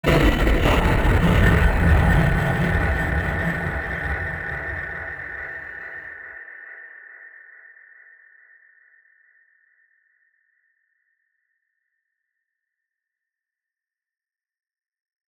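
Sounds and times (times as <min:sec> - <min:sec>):
broken machinery: 0:00.0 - 0:05.8.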